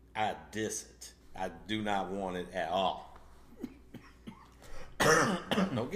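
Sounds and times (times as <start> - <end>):
speech: 0.2 - 3.8, 5.0 - 5.9
hoarse coughs: 3.6 - 5.9.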